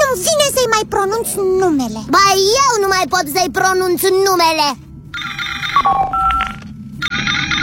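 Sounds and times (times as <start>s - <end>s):
speech: 0.1s - 4.9s
telephone ringtone with a melodic electronic tune of bright repeating tones: 5.1s - 7.6s.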